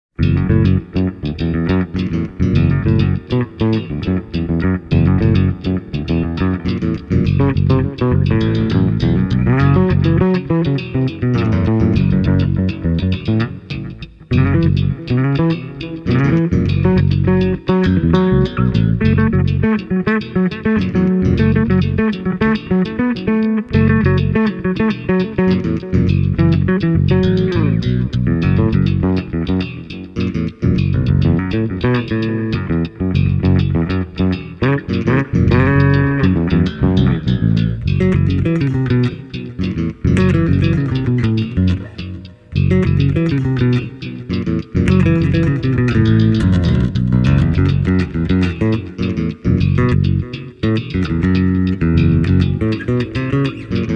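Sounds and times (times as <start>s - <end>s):
bass instruments playing a demo song: 0.1s - 53.9s.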